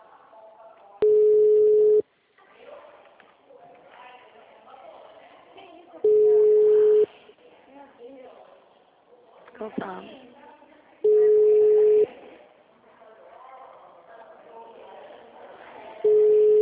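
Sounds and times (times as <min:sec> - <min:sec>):
people talking quietly: 0:00.0 - 0:16.6
telephone ringback tone while placing a call: 0:01.0 - 0:02.0, 0:06.0 - 0:07.0, 0:11.1 - 0:12.0, 0:16.1 - 0:16.6
speech: 0:09.7 - 0:10.3.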